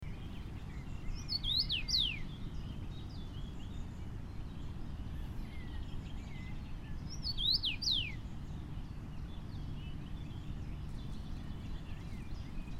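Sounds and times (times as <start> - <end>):
common rosefinch singing in Essenbach: 0.0 - 12.7.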